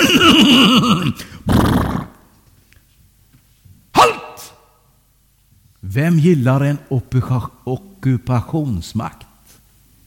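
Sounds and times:
speech: 0.6 - 1.9, 6.0 - 9.3
horse whinnying: 1.5 - 2.2.

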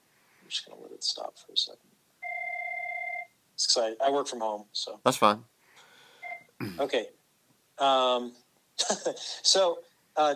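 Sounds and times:
speech: 0.5 - 2.0, 3.6 - 5.5, 6.6 - 7.2, 7.8 - 10.3
telephone ringing with a steady electronic tone: 2.2 - 3.3.

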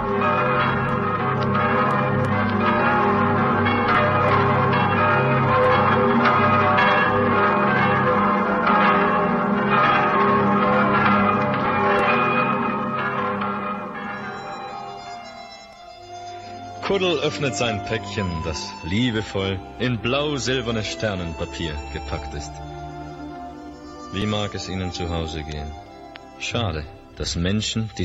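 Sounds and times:
cathedral church bells pealing: 0.0 - 28.0
speech: 17.0 - 22.7, 24.1 - 28.0.

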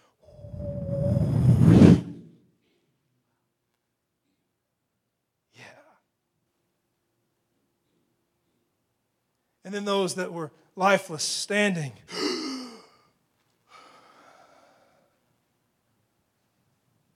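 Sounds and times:
gasping intake of breath: 0.3 - 2.2
gust of wind whistling: 0.3 - 2.3
speech: 9.7 - 12.4.

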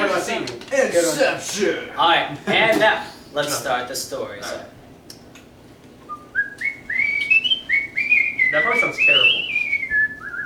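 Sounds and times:
speech: 0.2 - 4.8, 8.5 - 9.4
person whistling a wavering tune: 6.1 - 10.4.

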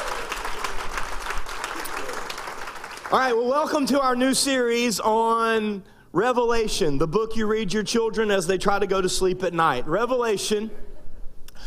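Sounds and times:
large church audience applauding: 0.0 - 3.6
speech: 3.1 - 10.8.

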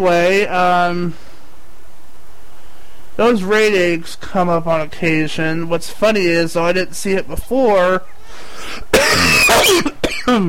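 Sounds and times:
speech: 0.0 - 1.2, 3.2 - 10.4
person coughing: 8.6 - 10.4.

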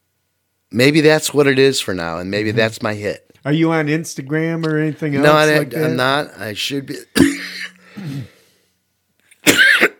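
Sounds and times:
speech: 0.7 - 8.3
person coughing in a coughing fit: 7.2 - 8.4, 9.4 - 9.9.

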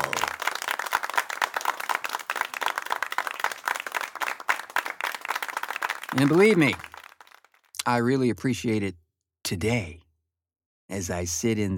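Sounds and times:
muffled applause from gloved hands: 0.0 - 7.7
speech: 6.2 - 6.9, 7.9 - 10.0, 10.9 - 11.7.

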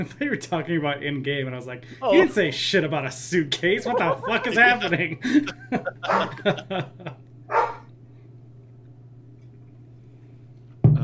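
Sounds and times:
speech: 0.0 - 7.6
laughter: 3.7 - 7.2
dog barking: 3.9 - 4.5, 6.0 - 6.6, 7.5 - 7.9.

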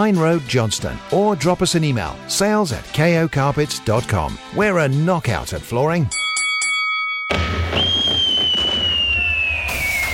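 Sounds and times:
speech: 0.0 - 6.2
firework whistling at a bonfire night display: 7.3 - 10.1.

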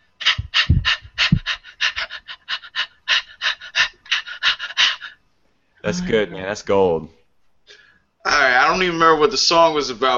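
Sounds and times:
puppy panting: 0.2 - 5.2
speech: 5.9 - 7.2, 8.6 - 10.1.

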